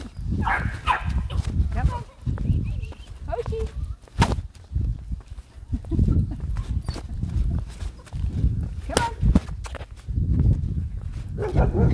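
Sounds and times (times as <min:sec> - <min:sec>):
footsteps: 0:00.0 - 0:11.9
steady outdoor rumble: 0:00.0 - 0:11.9
speech: 0:00.3 - 0:00.9
several dogs barking behind fences: 0:00.4 - 0:01.4, 0:11.4 - 0:11.9.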